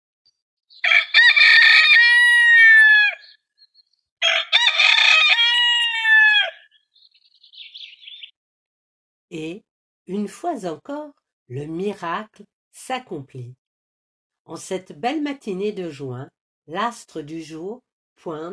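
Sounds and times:
rooster crowing: 0.8s - 3.4s, 4.2s - 6.8s
speech: 9.3s - 13.6s, 14.4s - 18.5s.

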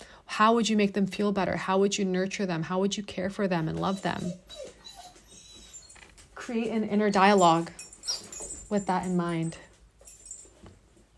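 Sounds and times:
speech: 0.4s - 4.6s, 6.5s - 7.8s, 8.7s - 9.6s
dog squealing in high-pitched whimpers: 3.6s - 6.1s.

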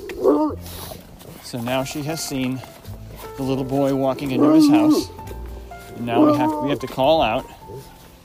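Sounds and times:
bloodhound baying: 0.0s - 0.9s, 4.2s - 5.2s, 6.0s - 6.9s
speech: 1.5s - 2.8s, 3.4s - 5.2s, 6.0s - 7.9s.

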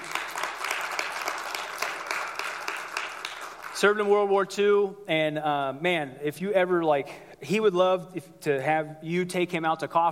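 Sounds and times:
church audience applauding a World War II veteran: 0.0s - 4.1s
speech: 3.8s - 10.1s.

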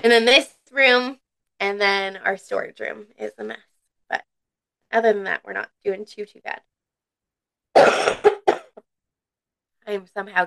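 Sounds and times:
speech: 0.0s - 4.3s, 4.9s - 6.7s, 7.7s - 8.3s, 9.9s - 10.4s
person in a harsh coughing fit: 7.7s - 8.8s.

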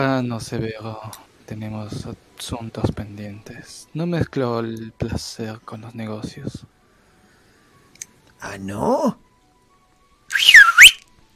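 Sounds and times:
speech: 0.0s - 6.8s, 8.4s - 9.2s
person whistling loudly: 10.3s - 11.0s.

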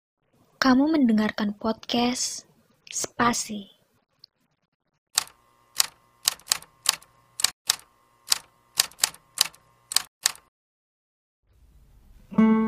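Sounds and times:
speech: 0.6s - 3.8s
typewriter keystrokes clacking: 5.2s - 10.5s.

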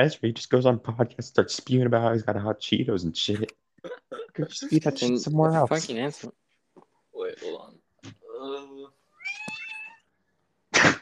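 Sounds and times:
speech: 0.0s - 6.4s
cat meowing: 9.2s - 10.1s.

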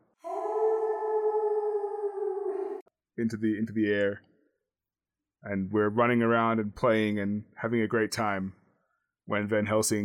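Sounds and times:
person imitating a wolf howl: 0.2s - 2.8s
speech: 3.2s - 4.3s, 5.4s - 8.6s, 9.3s - 10.0s.

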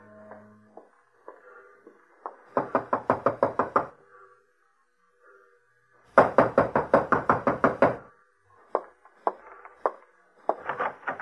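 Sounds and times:
rapid insistent knocking on a door: 2.6s - 3.9s, 6.2s - 8.0s.

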